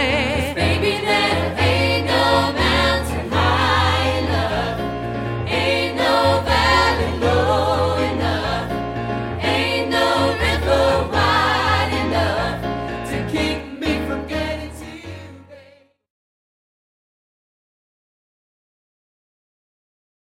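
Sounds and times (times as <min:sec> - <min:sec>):
funky gospel choir singing: 0:00.1 - 0:16.0.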